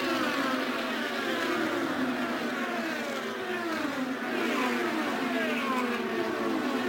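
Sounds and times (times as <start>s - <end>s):
IndyCar race cars with high-pitched engines speeding past: 0.1s - 6.8s.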